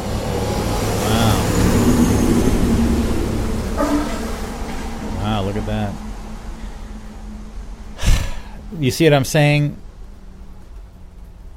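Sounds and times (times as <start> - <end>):
broad roar of road noise: 0.0 - 11.5
fire engine driving past rumbling: 0.0 - 11.5
speech: 8.8 - 9.8.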